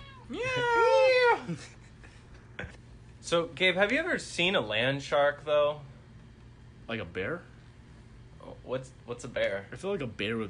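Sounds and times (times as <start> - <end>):
cat meowing: 0.0 - 1.1
speech: 1.5 - 1.8, 3.3 - 5.9, 6.9 - 7.5, 8.7 - 10.4.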